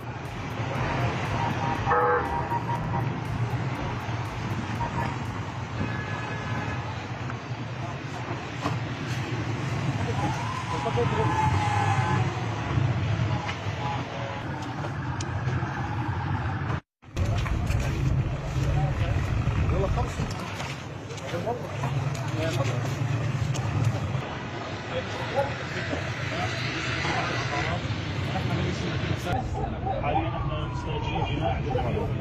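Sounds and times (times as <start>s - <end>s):
car horns honking in a motorcade in Daraa: 0.0s - 7.2s
voices: 0.0s - 16.1s, 17.2s - 32.1s
rumble of motorcade car engines and traffic: 0.0s - 32.1s.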